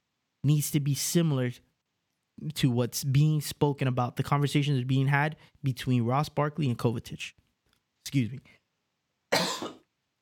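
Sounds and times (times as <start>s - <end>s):
speech: 0.4s - 1.7s, 2.4s - 7.4s, 8.0s - 8.6s
person coughing: 9.3s - 9.9s.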